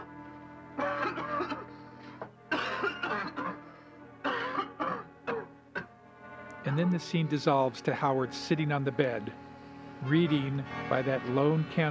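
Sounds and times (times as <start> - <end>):
man coughing from curtain dust: 2.5 - 3.5, 4.3 - 5.4
speech: 6.8 - 9.4, 10.0 - 11.8.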